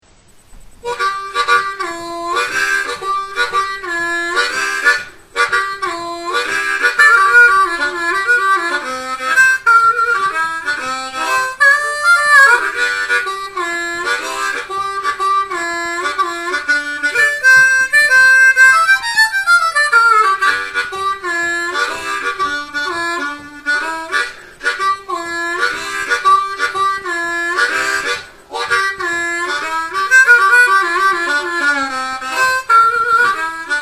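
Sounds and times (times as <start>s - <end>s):
12 bar blues harmonica in G: 0.7s - 33.8s.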